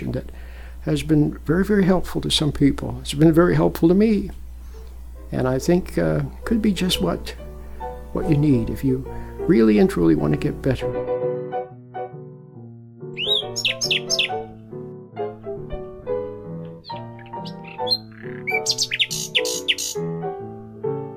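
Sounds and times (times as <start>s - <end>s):
speech: 0.0s - 4.4s, 5.3s - 7.4s, 8.1s - 11.1s
steady melodic tonal backdrop: 11.4s - 21.0s
birds chirping and tweeting: 13.2s - 14.6s, 16.5s - 20.1s.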